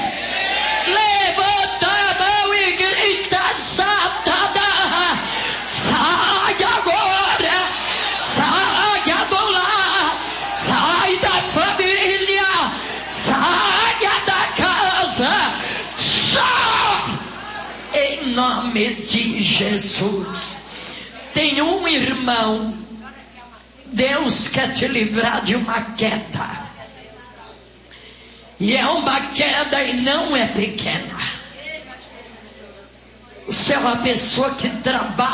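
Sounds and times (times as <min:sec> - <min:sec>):
church audience shouting in response: 0:00.0 - 0:18.6
speech: 0:18.8 - 0:20.5, 0:21.5 - 0:22.9, 0:23.9 - 0:26.6, 0:28.6 - 0:31.2, 0:33.5 - 0:35.3.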